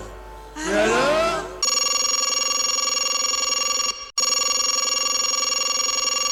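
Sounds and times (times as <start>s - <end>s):
telephone bell ringing with a metallic trill: 1.6s - 6.3s.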